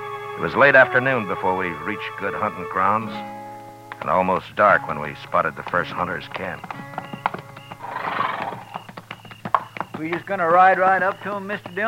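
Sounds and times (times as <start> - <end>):
speech: 0.4 - 3.4, 4.0 - 7.0, 10.0 - 11.8
horse hooves clopping on hard ground: 1.8 - 11.8
horse whinnying at a buffalo hunter's camp on the prairie: 4.8 - 11.8.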